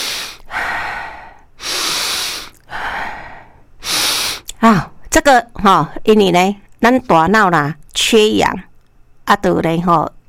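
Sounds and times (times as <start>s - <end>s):
slow deep breaths: 0.0s - 4.5s
speech: 4.6s - 8.7s, 9.3s - 10.2s.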